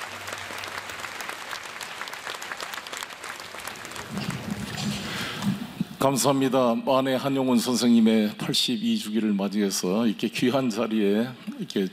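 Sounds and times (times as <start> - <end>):
audience applause at a Buddhist memorial ceremony: 0.0 - 5.9
speech: 6.0 - 11.9.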